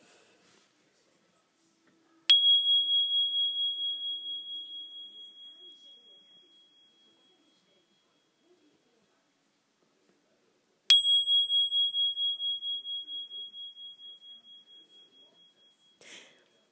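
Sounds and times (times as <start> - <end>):
small singing bowl struck, high ringing tone: 2.3 - 8.8, 10.9 - 16.6.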